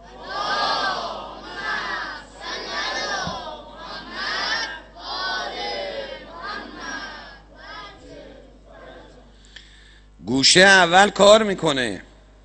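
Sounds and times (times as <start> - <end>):
large crowd reciting the salawat prayer in unison: 0.0 - 9.5
speech: 10.4 - 12.1.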